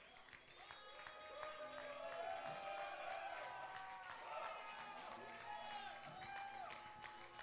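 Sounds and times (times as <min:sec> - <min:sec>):
church audience clapping: 0:00.0 - 0:07.4
crowd of men in a church audience cheering and shouting in praise of God: 0:01.1 - 0:06.8.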